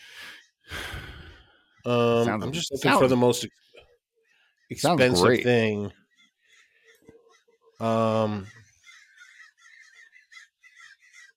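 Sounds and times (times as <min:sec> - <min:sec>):
several crows with higher-pitched calls and chatter: 0:00.1 - 0:11.3
speech: 0:01.8 - 0:03.7, 0:04.7 - 0:06.0, 0:07.8 - 0:08.6
crows cawing outdoors: 0:06.0 - 0:07.8, 0:08.4 - 0:11.3.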